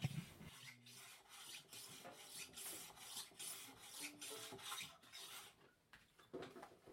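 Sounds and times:
sanding a violin fingerboard: 0:00.0 - 0:05.5
faint workshop background: 0:00.0 - 0:06.9.

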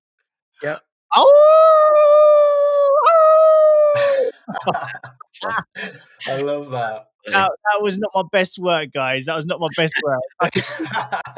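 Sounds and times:
speech: 0:00.6 - 0:02.0, 0:04.5 - 0:11.3
brief choppy vocal sounds like laughter: 0:00.6 - 0:11.3
person imitating a wolf howl: 0:01.1 - 0:04.3
laughter: 0:03.9 - 0:07.5, 0:09.6 - 0:11.3.

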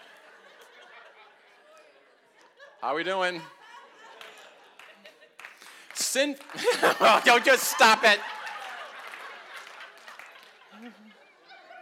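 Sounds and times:
laughter: 0:00.0 - 0:05.8, 0:06.4 - 0:11.8
speech: 0:02.8 - 0:03.6, 0:06.1 - 0:08.4, 0:10.8 - 0:11.2
audience clapping: 0:04.1 - 0:11.2.

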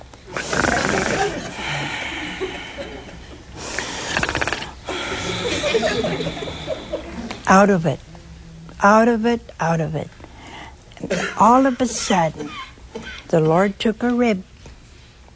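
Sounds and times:
voice imitating a man's heavy snoring: 0:00.3 - 0:02.1, 0:03.7 - 0:06.3
laughter: 0:00.7 - 0:03.7, 0:04.9 - 0:07.4
speech: 0:07.5 - 0:08.1, 0:08.8 - 0:10.2, 0:11.0 - 0:12.6, 0:13.3 - 0:14.5.

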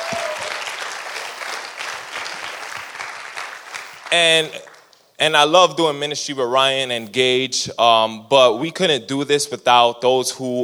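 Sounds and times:
crowd applauding: 0:00.0 - 0:04.9
speech: 0:04.1 - 0:04.6, 0:05.2 - 0:10.6.

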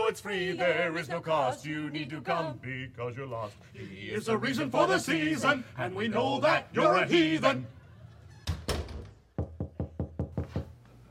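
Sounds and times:
speech: 0:00.1 - 0:07.8
neighbor knocking on a garage door: 0:08.6 - 0:10.7.

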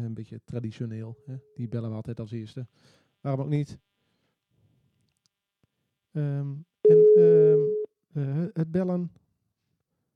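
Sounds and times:
speech: 0:00.0 - 0:03.9, 0:06.1 - 0:09.2
telephone busy signal: 0:06.9 - 0:07.9.

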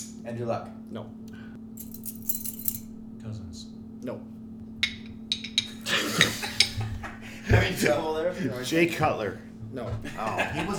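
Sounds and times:
low steady hum: 0:00.0 - 0:10.7
speech: 0:00.2 - 0:01.9, 0:03.2 - 0:04.4, 0:07.5 - 0:10.7
keys shaken as a makeshift buzzer: 0:01.8 - 0:02.9
laughter: 0:05.7 - 0:10.7.

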